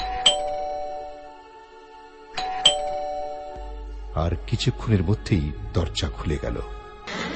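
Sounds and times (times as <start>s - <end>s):
doorbell chime: 0.0s - 1.3s, 2.4s - 3.6s
speech: 4.2s - 7.2s.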